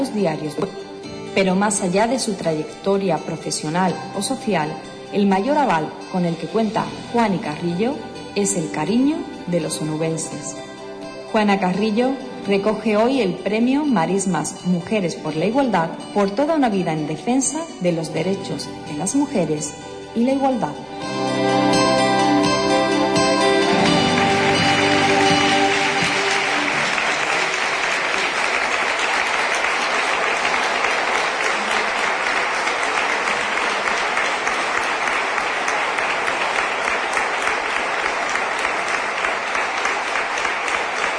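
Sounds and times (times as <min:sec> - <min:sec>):
speech: 0:00.0 - 0:10.7, 0:11.3 - 0:20.9
brief musical tail: 0:00.0 - 0:41.1
large audience clapping steadily and loudly: 0:23.4 - 0:41.1.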